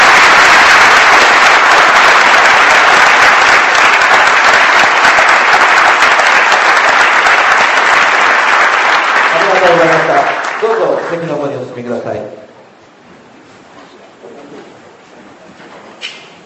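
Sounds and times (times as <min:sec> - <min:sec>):
large audience applauding: 0:00.0 - 0:11.5
speech: 0:11.1 - 0:12.4.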